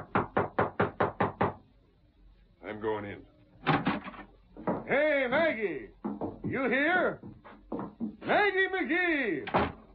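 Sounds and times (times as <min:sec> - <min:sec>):
knocking on a house door: 0:00.0 - 0:01.6, 0:03.7 - 0:05.0, 0:06.0 - 0:08.3
speech: 0:02.8 - 0:03.8, 0:04.9 - 0:07.3, 0:08.3 - 0:09.7.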